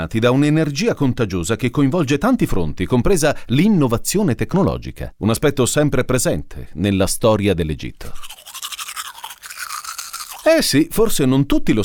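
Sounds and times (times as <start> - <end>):
speech: 0.0 - 8.3, 10.5 - 11.8
toothbrush scrubbing teeth: 8.0 - 10.7.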